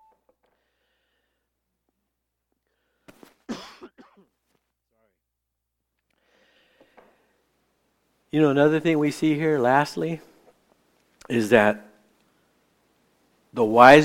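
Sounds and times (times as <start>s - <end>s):
coughing: 3.5s - 4.3s
throat clearing: 3.5s - 4.3s
speech: 8.3s - 10.3s, 11.3s - 11.9s, 13.5s - 14.0s.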